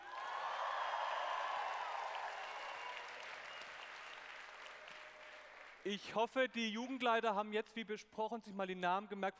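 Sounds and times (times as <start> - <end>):
crowd cheering and clapping: 0.0 - 5.9
speech: 5.8 - 9.3.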